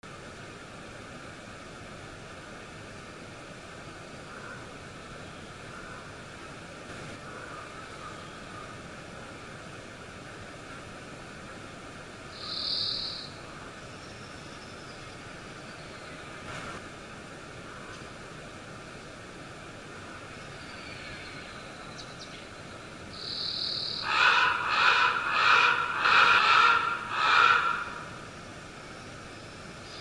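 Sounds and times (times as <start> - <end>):
lonely raven in a forest: 4.2 - 4.8, 5.6 - 6.2, 7.2 - 8.8, 23.2 - 28.3.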